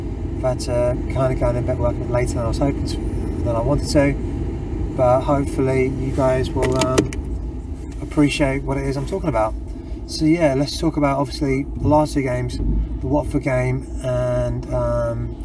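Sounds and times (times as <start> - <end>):
car interior rumble while driving: 0.0 - 15.4
speech: 0.4 - 4.3, 5.0 - 7.2, 8.2 - 15.4.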